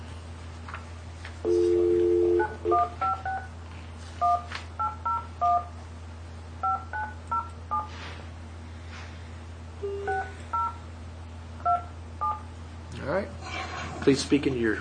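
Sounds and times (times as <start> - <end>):
steady low hum: 0.0 - 14.8
telephone dial tone on speakerphone: 1.5 - 3.3
speech: 14.1 - 14.8.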